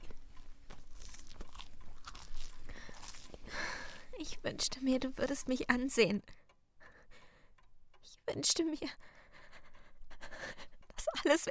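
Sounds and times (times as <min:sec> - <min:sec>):
wet bites and mastication of a sandwich: 0:00.0 - 0:04.1
crunchy chewing of a sandwich at a kitchen table: 0:00.0 - 0:04.2
speech: 0:04.2 - 0:06.4, 0:08.4 - 0:09.2, 0:11.2 - 0:11.5.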